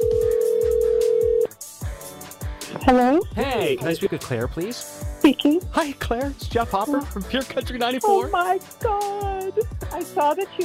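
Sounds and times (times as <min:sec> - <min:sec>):
electronic ringback tone from an outgoing phone call: 0:00.0 - 0:01.5
soft rhythmic music: 0:00.0 - 0:10.6
speech: 0:03.6 - 0:10.6.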